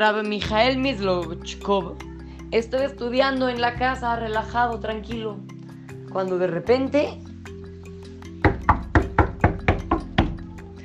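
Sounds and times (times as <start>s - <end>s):
speech: 0.0s - 5.5s, 6.1s - 7.2s
firm knocks on a wooden door: 8.4s - 10.4s.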